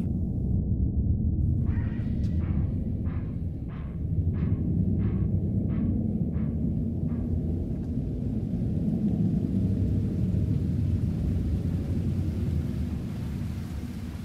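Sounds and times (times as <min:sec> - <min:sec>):
deep continuous rumbling thunder: 0:01.1 - 0:14.2
heavy rain: 0:07.6 - 0:14.2.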